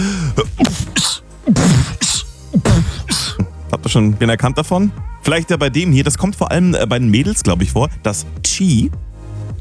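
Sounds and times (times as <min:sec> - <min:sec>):
beatbox-style rhythmic sneezes: 0:00.0 - 0:03.7
speech: 0:04.0 - 0:09.5.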